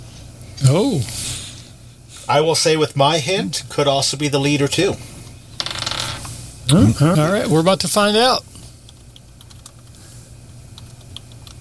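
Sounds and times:
low hum: 0:00.0 - 0:11.5
speech: 0:00.6 - 0:01.3, 0:02.3 - 0:05.1, 0:06.7 - 0:08.5
typing on a computer keyboard: 0:08.9 - 0:10.0, 0:10.8 - 0:11.5.

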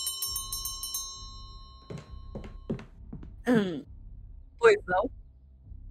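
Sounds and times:
hotel doorbell ringing with a metallic rattling tone: 0:00.0 - 0:02.7
speech: 0:03.5 - 0:03.9, 0:04.6 - 0:05.2.

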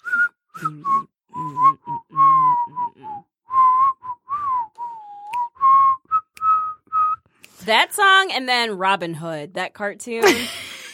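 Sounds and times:
person whistling a tune alone: 0:00.0 - 0:07.6
speech: 0:07.7 - 0:10.8.

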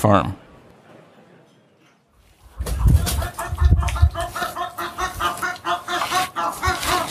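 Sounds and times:
chickens clucking in a farmyard: 0:02.4 - 0:07.0
wind gusts blowing over the microphone: 0:02.6 - 0:04.3.

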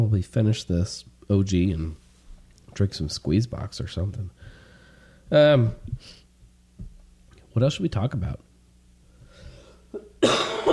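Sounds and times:
speech: 0:00.0 - 0:02.0, 0:02.8 - 0:04.6, 0:05.3 - 0:06.2, 0:07.6 - 0:08.4
throat clearing: 0:09.9 - 0:10.7
harsh cough: 0:10.0 - 0:10.7.

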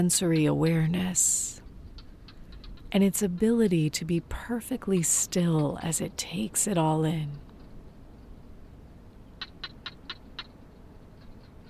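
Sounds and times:
speech: 0:00.0 - 0:01.6, 0:02.9 - 0:07.5
steady low rumble of wind: 0:00.0 - 0:11.6
barking gecko calling with sharp clicks: 0:09.4 - 0:10.6.

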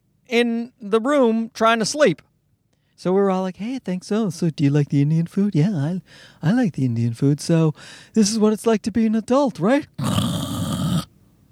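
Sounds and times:
speech: 0:00.3 - 0:02.3, 0:03.0 - 0:10.3
person imitating a loud rasping snore: 0:10.0 - 0:11.1.

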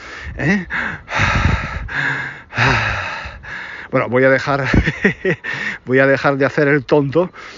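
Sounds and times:
heavy agitated breathing of a man walking along a street: 0:00.0 - 0:04.0, 0:05.4 - 0:05.9
speech: 0:00.4 - 0:01.0, 0:03.9 - 0:07.5
laughter: 0:04.6 - 0:05.8.

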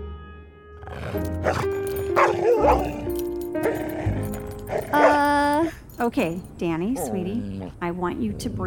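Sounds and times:
dog growling and snarling: 0:00.8 - 0:05.6, 0:06.8 - 0:08.6
speech: 0:01.1 - 0:03.0, 0:03.6 - 0:04.1, 0:04.7 - 0:08.6.

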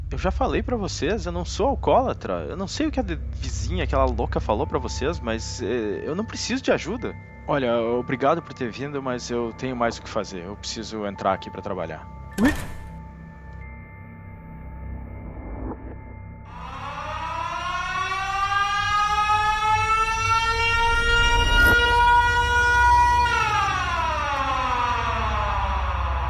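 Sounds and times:
low rumble: 0:00.0 - 0:06.6, 0:14.3 - 0:22.8
speech: 0:00.2 - 0:12.7
siren wailing: 0:15.0 - 0:26.2.

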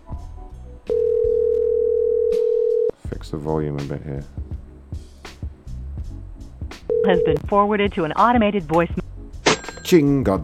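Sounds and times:
telephone ringback tone on an unanswered call: 0:00.9 - 0:02.9, 0:06.9 - 0:07.5
speech: 0:03.3 - 0:05.0, 0:07.1 - 0:08.9, 0:09.9 - 0:10.4.

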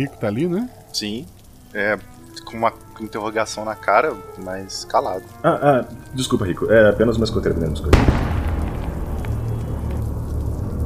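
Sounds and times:
speech: 0:00.0 - 0:08.3
loud deep explosion with crackling: 0:07.9 - 0:10.8.

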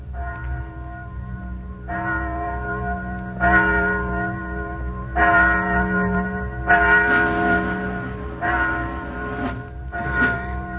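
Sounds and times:
deep church bell tolling the hour: 0:00.0 - 0:10.7.

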